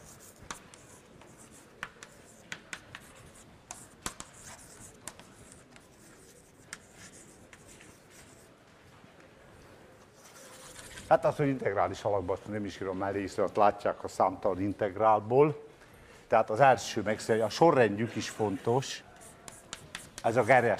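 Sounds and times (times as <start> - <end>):
writing equations on a board during a physics lecture: 0.0 - 8.6, 10.0 - 11.3, 18.4 - 20.7
speech: 11.1 - 15.7, 16.3 - 19.1, 20.2 - 20.7.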